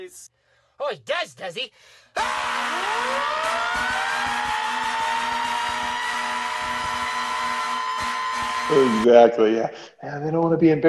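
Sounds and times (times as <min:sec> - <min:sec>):
speech: 0:00.0 - 0:04.6, 0:08.7 - 0:10.8
emergency vehicle siren winding up to a high steady wail: 0:02.2 - 0:09.1.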